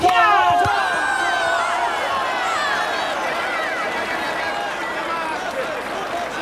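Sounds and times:
crowd of players and spectators cheering after a goal: 0.0 - 6.3.

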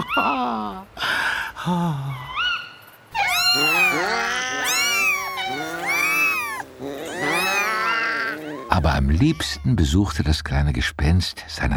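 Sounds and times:
several cats yowling and meowing: 0.0 - 0.9, 2.0 - 9.9
speech: 1.6 - 2.2, 9.1 - 11.7.

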